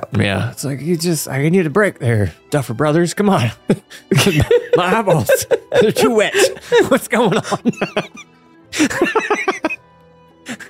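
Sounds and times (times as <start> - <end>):
speech: 0.1 - 9.7
rhythmic breathy laughter with harsh cough-like catches: 3.7 - 9.8, 10.4 - 10.6.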